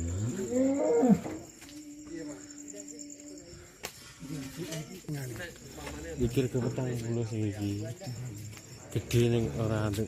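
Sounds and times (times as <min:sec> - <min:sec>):
champion cow mooing while being fed: 0:00.0 - 0:01.4
speech: 0:06.2 - 0:10.0.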